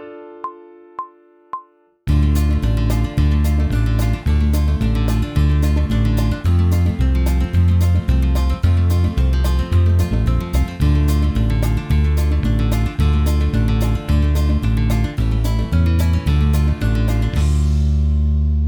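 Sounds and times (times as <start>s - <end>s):
backing track in D minor: 2.1s - 18.5s.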